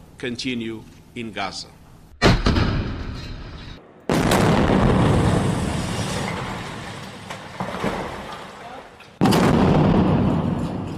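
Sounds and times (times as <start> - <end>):
speech: 0.2 - 1.8
missile strike explosions on apartment building: 2.2 - 3.2, 3.8 - 8.3, 9.2 - 10.9.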